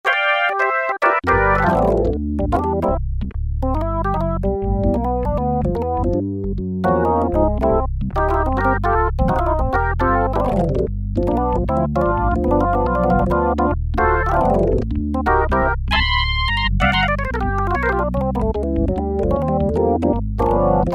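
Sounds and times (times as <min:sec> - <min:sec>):
Roland Juno-60 synthesizer organ factory preset: 0:00.0 - 0:03.0, 0:03.6 - 0:20.9.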